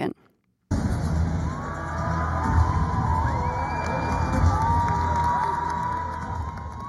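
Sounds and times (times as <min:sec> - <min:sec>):
large outdoor crowd cheering and shouting at a statue celebration: 0:01.1 - 0:06.8
high whoops from an outdoor crowd: 0:01.5 - 0:06.8
whistles from an outdoor crowd: 0:03.3 - 0:04.6.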